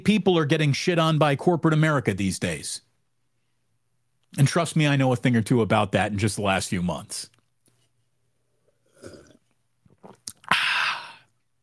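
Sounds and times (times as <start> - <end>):
speech: 0.0 - 2.9, 4.3 - 7.3
person sipping a drink: 8.5 - 11.5
loud breathy exhale of satisfaction: 10.5 - 11.3.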